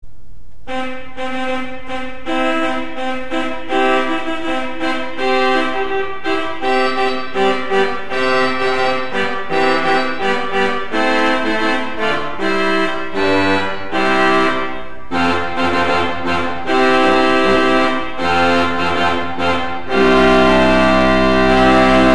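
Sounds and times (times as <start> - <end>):
pipe organ trumpet 8 foot stop on the rugwerk: 0.7 - 22.1.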